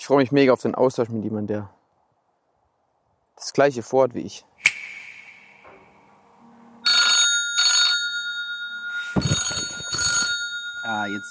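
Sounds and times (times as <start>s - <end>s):
speech: 0.1s - 1.8s, 3.4s - 4.6s, 10.9s - 11.2s
sharp click: 4.6s - 6.0s
phone electronic ringtone for an incoming call: 6.8s - 11.2s.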